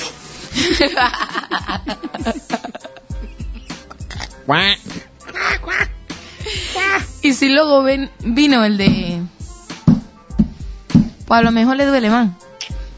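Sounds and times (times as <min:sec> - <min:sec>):
speech: 0:00.6 - 0:02.6, 0:04.5 - 0:04.9, 0:07.2 - 0:09.4, 0:11.3 - 0:12.4
laughter: 0:00.6 - 0:03.9
duck quacking: 0:04.2 - 0:06.0.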